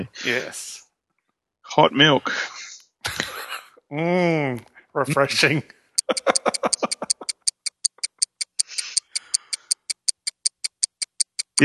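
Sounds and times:
speech: 0.0 - 0.8, 1.7 - 3.2, 3.9 - 6.3
laughter: 3.1 - 3.8, 6.0 - 7.3
clock ticking: 6.0 - 11.6.

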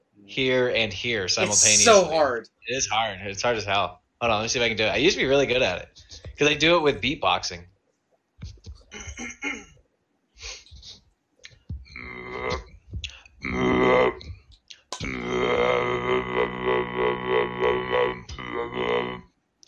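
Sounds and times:
speech: 0.2 - 7.7
voice holding a loud buzzy low drone imitating a didgeridoo: 1.4 - 2.3, 12.0 - 12.7, 13.4 - 14.3, 15.0 - 19.2
voice making short guttural bursts: 1.4 - 2.3, 11.9 - 19.2.

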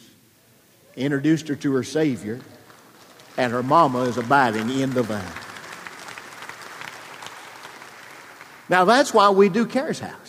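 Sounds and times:
speech: 1.0 - 2.6, 3.4 - 5.4, 8.7 - 10.2
audience at a church service clapping: 1.6 - 9.6.

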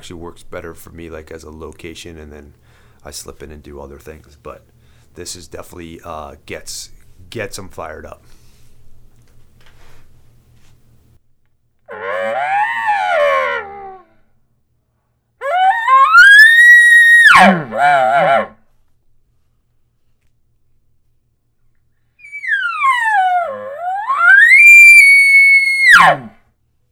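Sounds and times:
speech: 0.0 - 8.4, 17.4 - 18.0
elk bugle imitated with a game call: 11.9 - 14.2, 15.4 - 18.6, 22.2 - 26.4.

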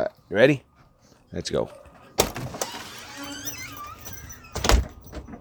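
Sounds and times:
speech: 0.3 - 0.7, 1.3 - 1.8
faint squeaks and rustling: 0.3 - 5.3
door thudding shut: 2.2 - 5.3.

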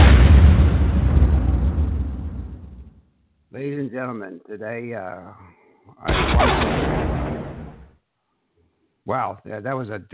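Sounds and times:
booming explosion with rumbling roar: 0.0 - 3.0, 6.1 - 7.9
speech: 4.0 - 7.4, 9.0 - 10.1.

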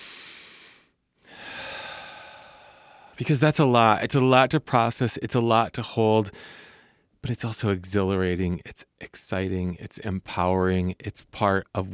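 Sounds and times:
deep breath: 0.0 - 3.2, 6.3 - 7.1
speech: 3.2 - 11.9.

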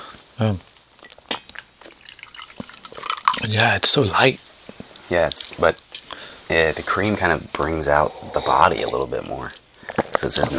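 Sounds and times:
speech: 0.4 - 0.7, 3.5 - 4.5, 5.1 - 5.8, 6.5 - 9.6, 10.2 - 10.5
scattered drips and small liquid plinks: 0.7 - 6.6
hot water trickling and splashing: 1.5 - 5.8.

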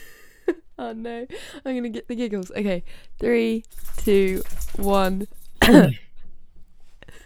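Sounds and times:
speech: 0.8 - 6.0
forced cough: 5.6 - 6.0.

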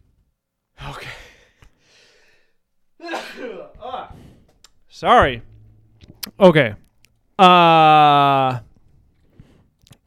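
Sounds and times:
person sneezing: 3.0 - 4.2
speech: 5.0 - 5.5, 6.4 - 6.8, 7.4 - 8.6.

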